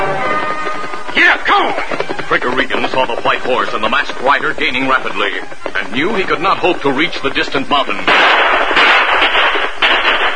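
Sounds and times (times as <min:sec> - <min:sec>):
noisy hiss: 0:01.1 - 0:10.3
speech: 0:01.6 - 0:08.7
revolver gunshots: 0:08.0 - 0:10.3.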